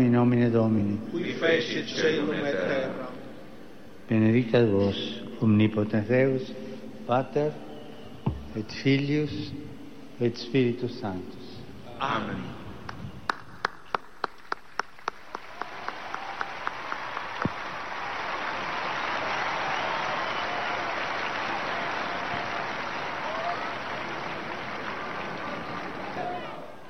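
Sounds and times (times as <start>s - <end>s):
speech: 0.0s - 3.2s, 4.1s - 7.7s, 8.5s - 11.4s, 12.0s - 12.6s
very large crowd applauding at a papal general audience: 12.9s - 26.8s.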